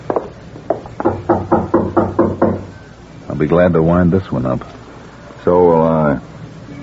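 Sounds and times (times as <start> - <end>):
knuckles knocking on a door: 0.1 - 2.7
speech: 3.4 - 4.8, 5.4 - 6.3.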